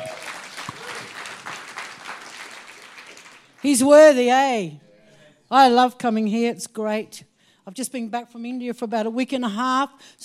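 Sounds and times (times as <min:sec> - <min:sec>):
large audience applause: 0:00.0 - 0:03.6
speech: 0:03.6 - 0:04.8, 0:05.5 - 0:10.2.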